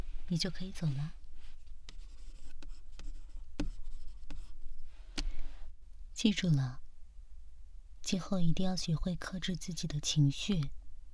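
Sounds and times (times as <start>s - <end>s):
quiet low hum: 0.0s - 11.1s
speech: 0.3s - 1.2s, 6.2s - 6.8s, 8.1s - 10.8s
pen writing a signature on paper: 0.8s - 4.7s.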